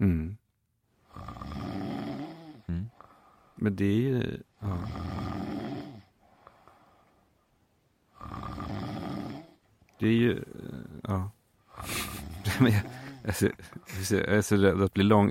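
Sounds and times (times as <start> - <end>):
person imitating snoring: 1.0 - 3.4, 4.6 - 6.8, 8.1 - 9.6, 10.2 - 13.6
speech: 3.6 - 5.1, 10.0 - 11.4, 12.5 - 15.3.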